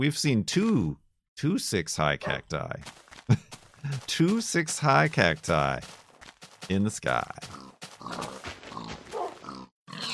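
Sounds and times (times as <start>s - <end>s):
speech: 0.0s - 6.0s, 6.7s - 8.3s
pig grunting and snorting: 7.3s - 10.1s.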